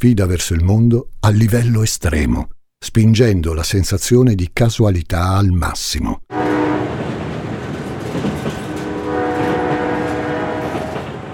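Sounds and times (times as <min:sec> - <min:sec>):
speech: 0:00.0 - 0:06.4
train rumbling past: 0:06.3 - 0:11.3.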